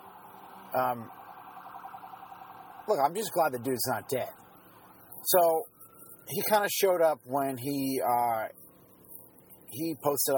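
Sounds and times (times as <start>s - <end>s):
ambulance siren: 0.0s - 9.7s
speech: 0.7s - 1.2s, 2.9s - 4.4s, 5.2s - 5.7s, 6.3s - 8.6s, 9.7s - 10.3s.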